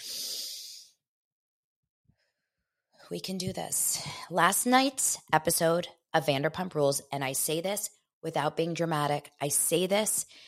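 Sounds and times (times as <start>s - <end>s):
deep breath: 0.0s - 1.0s
speech: 3.1s - 10.4s.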